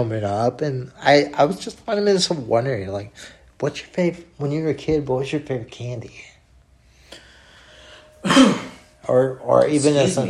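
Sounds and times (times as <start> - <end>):
speech: 0.0 - 6.3, 8.2 - 10.2
person coughing harshly: 8.2 - 8.9.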